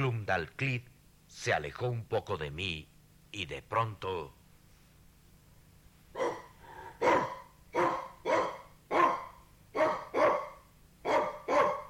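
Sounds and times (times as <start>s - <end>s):
speech: 0.0s - 4.4s
small white dog barking: 6.2s - 11.8s.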